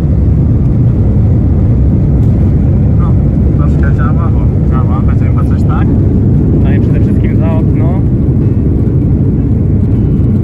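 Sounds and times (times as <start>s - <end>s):
Airbus A330 jet engines roaring as it accelerates for takeoff: 0.0s - 10.4s.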